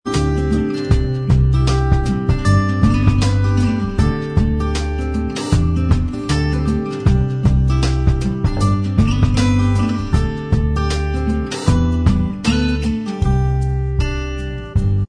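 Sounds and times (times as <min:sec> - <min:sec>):
acoustic style instrumental music: 0:00.0 - 0:15.0.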